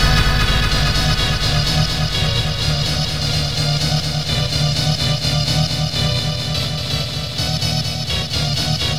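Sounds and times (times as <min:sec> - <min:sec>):
rave synth loops in D sharp minor at 126 BPM: 0:00.0 - 0:08.8.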